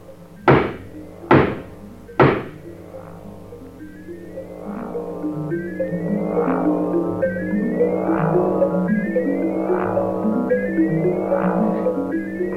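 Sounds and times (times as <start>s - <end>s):
musical drone with pulsing tones: 0.0s - 12.5s
knocks on a door: 0.5s - 1.6s, 2.2s - 2.5s.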